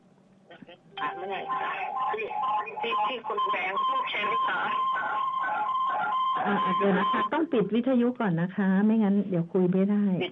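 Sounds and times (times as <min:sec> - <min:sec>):
speech: 0:00.6 - 0:10.3
telephone ringing with an incoming call: 0:01.0 - 0:07.3.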